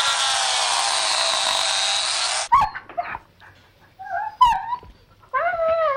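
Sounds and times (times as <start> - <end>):
electric clippers buzzing shearing a puppy's hair: 0.0 - 2.5
puppy whimpering: 4.0 - 5.9.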